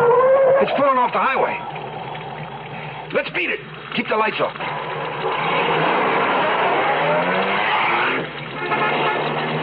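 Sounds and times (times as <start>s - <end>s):
speech: 0.6s - 1.9s, 3.1s - 5.7s
car engine roaring while accelerating hard: 4.6s - 9.6s
car tires squealing: 4.6s - 9.6s.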